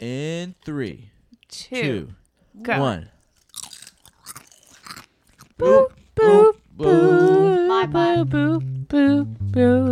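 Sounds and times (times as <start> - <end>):
speech: 0.0 - 3.2, 5.6 - 9.9
people crunching sweet potato chips: 3.2 - 6.2.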